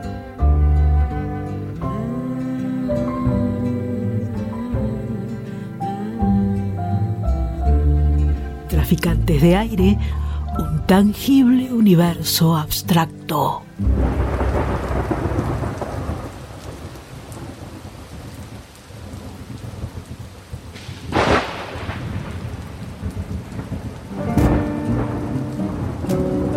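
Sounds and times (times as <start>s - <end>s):
steady rain pouring: 0.0s - 26.5s
speech: 8.9s - 14.4s
low rumbling thunder: 13.8s - 26.5s.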